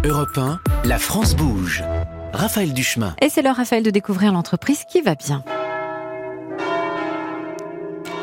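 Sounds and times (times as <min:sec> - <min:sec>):
speech: 0:00.2 - 0:05.5
large cast bronze bells ringing together: 0:03.9 - 0:08.2.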